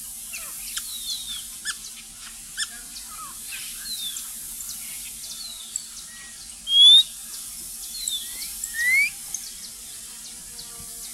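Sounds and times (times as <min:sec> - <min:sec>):
white monjita Xolmis irupero dawn whistle before sunrise: 0:08.7 - 0:09.2.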